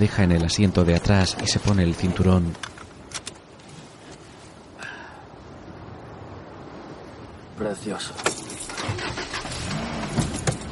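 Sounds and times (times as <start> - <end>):
speech: 0.0 - 2.7, 7.8 - 9.0
car engine starting: 8.7 - 10.7.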